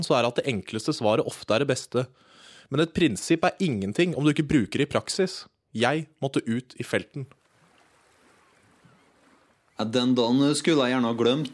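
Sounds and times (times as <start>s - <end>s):
speech: 0.0s - 7.4s, 9.8s - 11.5s
water lapping at a marina: 7.2s - 11.5s.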